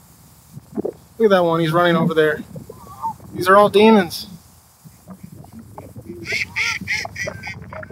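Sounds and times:
speech: 0:01.2 - 0:02.5, 0:03.4 - 0:04.3
loud nasal duck calls: 0:01.8 - 0:03.9, 0:04.8 - 0:07.9.

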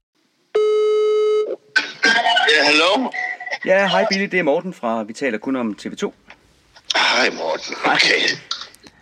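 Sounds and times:
ringback tone of an outgoing phone call: 0:00.6 - 0:01.6
speech: 0:02.6 - 0:06.2, 0:07.2 - 0:08.5.

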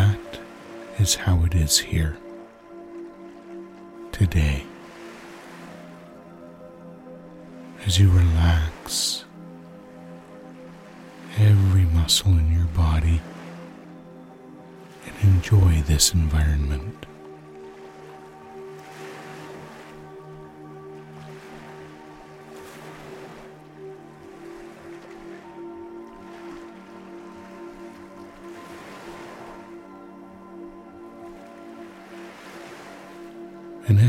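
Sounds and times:
constant low drone humming: 0:00.0 - 0:34.0
ocean waves washing ashore: 0:00.0 - 0:34.0
speech: 0:01.0 - 0:02.3, 0:04.2 - 0:04.7, 0:07.8 - 0:09.3, 0:11.4 - 0:13.4, 0:15.2 - 0:17.1.

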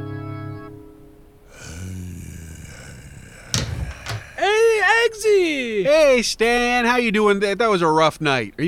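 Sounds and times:
door opening with sharp clunks: 0:03.5 - 0:04.5
speech: 0:05.0 - 0:08.6.

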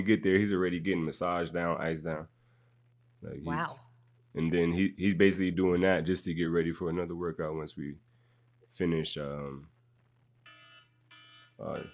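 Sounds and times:
speech: 0:00.0 - 0:02.4, 0:03.2 - 0:08.1, 0:08.7 - 0:09.7, 0:11.6 - 0:11.9
faint low hum: 0:00.0 - 0:11.9
alarm clock ringing with bright electronic beeping: 0:10.4 - 0:11.9.

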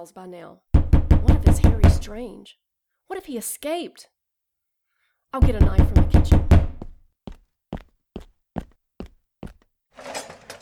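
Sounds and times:
speech: 0:00.0 - 0:04.1, 0:05.3 - 0:06.5
firm knocks on a door: 0:00.8 - 0:02.1, 0:05.4 - 0:07.0.

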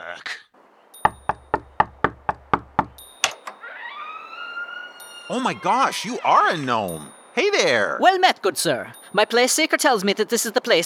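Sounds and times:
knocking on a front door: 0:01.0 - 0:03.0
rising whistling tonal sound: 0:03.0 - 0:07.6
speech: 0:05.3 - 0:10.8.

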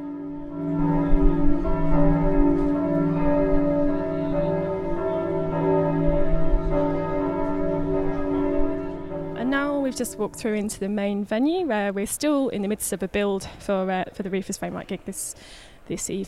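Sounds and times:
peal of ten church tower bells ringing: 0:00.0 - 0:11.8
speech: 0:10.0 - 0:16.2.

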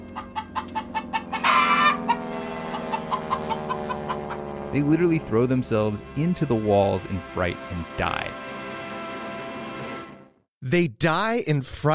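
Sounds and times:
flock of chickens clucking: 0:00.0 - 0:04.4
speech: 0:04.7 - 0:08.5, 0:10.7 - 0:11.9.

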